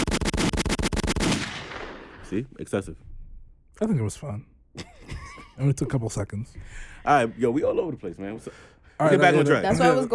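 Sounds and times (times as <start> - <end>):
rapid gunshot sound effects: 0.0 - 2.4
speech: 2.3 - 3.1, 3.8 - 10.1.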